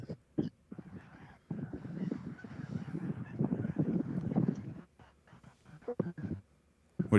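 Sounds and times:
big flock of geese honking overhead: 0:00.7 - 0:06.4.

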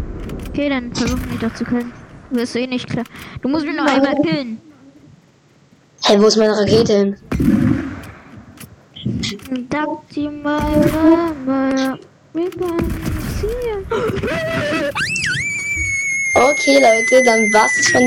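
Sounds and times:
speech: 0:00.6 - 0:04.7, 0:06.0 - 0:07.8, 0:09.3 - 0:15.4, 0:16.4 - 0:18.0
person shouting and wailing excitedly: 0:13.9 - 0:18.0
loud sustained high-pitched scream: 0:14.3 - 0:18.0.

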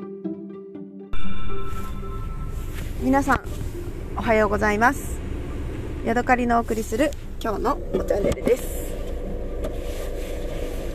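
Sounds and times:
engine and road noise inside a running Suzuki Hustler loaner car: 0:01.2 - 0:10.9
speech: 0:03.0 - 0:05.2, 0:06.0 - 0:08.8.

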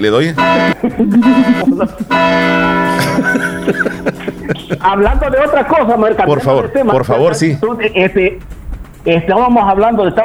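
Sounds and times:
speech: 0:00.0 - 0:04.0, 0:04.8 - 0:10.2
church bell tolling: 0:00.0 - 0:06.0
people talking and laughing loudly: 0:00.0 - 0:09.0.

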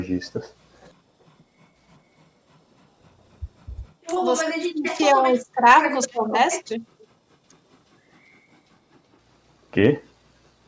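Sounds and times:
speech: 0:00.0 - 0:00.7, 0:04.1 - 0:06.9, 0:09.8 - 0:10.1
train rumbling by: 0:00.0 - 0:10.6.

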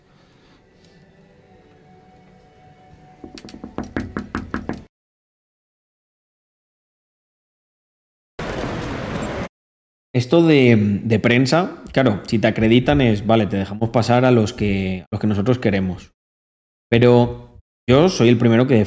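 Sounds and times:
chairs being moved and bumped, knocking and clattering: 0:03.2 - 0:04.9
speech: 0:03.3 - 0:03.7, 0:10.2 - 0:16.2, 0:16.9 - 0:18.8.

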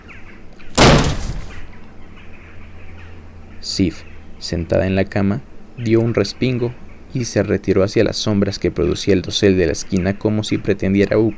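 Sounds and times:
wooden door smashed and crashing down: 0:00.8 - 0:01.7
speech: 0:03.7 - 0:11.3.

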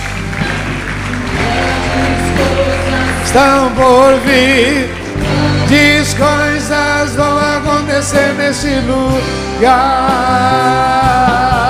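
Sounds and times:
audience clapping: 0:00.0 - 0:06.8
speech: 0:03.3 - 0:05.0, 0:05.7 - 0:11.6.

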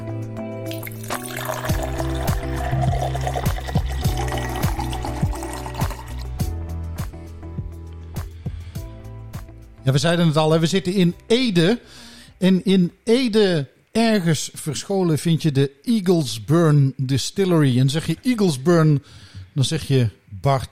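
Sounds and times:
small clinks of a glass: 0:00.7 - 0:06.2
whisky pouring into a glass with gurgling and splashes: 0:00.7 - 0:06.4
speech: 0:09.9 - 0:20.7.

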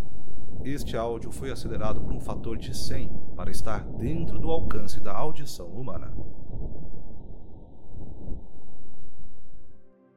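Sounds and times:
Mars wind pressure changes sped up as low rumbling roar: 0:00.0 - 0:09.8
speech: 0:00.7 - 0:06.4.

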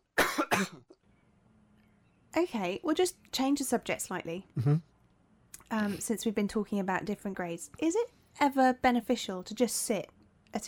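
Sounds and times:
person coughing: 0:00.2 - 0:00.9
speech: 0:00.6 - 0:00.9, 0:02.4 - 0:04.9, 0:05.7 - 0:10.6.

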